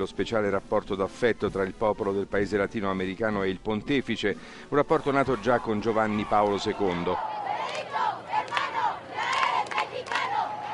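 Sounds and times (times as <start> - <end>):
speech: 0.0 - 8.1
large crowd shouting a rhythmic chant in unison: 5.1 - 10.7.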